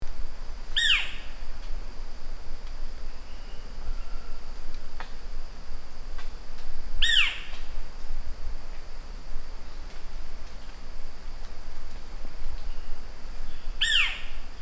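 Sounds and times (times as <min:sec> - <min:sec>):
Aegotheles cristatus Australian owlet-nightjar calling: 0:00.8 - 0:01.3, 0:07.0 - 0:07.5, 0:13.5 - 0:14.3.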